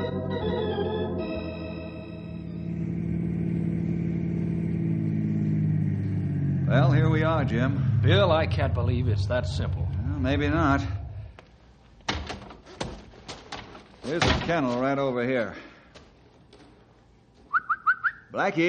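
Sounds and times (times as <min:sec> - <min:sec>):
car engine starting: 0:00.2 - 0:11.7
car engine revving as the car pulls away: 0:02.3 - 0:11.3
speech: 0:07.4 - 0:11.0, 0:14.1 - 0:15.7, 0:18.3 - 0:18.6.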